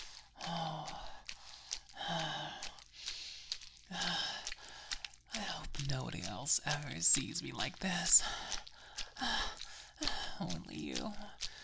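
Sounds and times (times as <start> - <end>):
heavy panting breaths: 0.0 - 5.3, 8.1 - 10.5, 11.2 - 11.6
soft gasps: 0.0 - 5.3, 8.2 - 10.5, 11.3 - 11.6
speech: 5.9 - 8.6, 10.4 - 11.5.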